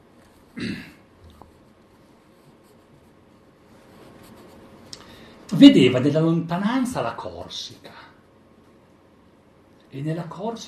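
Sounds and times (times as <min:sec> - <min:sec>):
pen scratching rapidly on paper: 0:01.6 - 0:04.7
speech: 0:05.5 - 0:08.1, 0:10.0 - 0:10.6.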